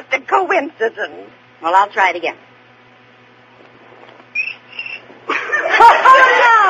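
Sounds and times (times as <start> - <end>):
speech: 0.1 - 2.5
cricket chirping: 4.4 - 5.0
laughter: 5.3 - 6.6.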